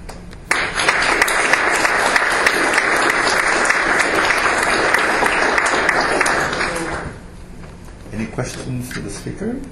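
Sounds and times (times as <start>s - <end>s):
audience applause after a speaker's talk: 0.5s - 7.2s
speech: 8.4s - 9.7s.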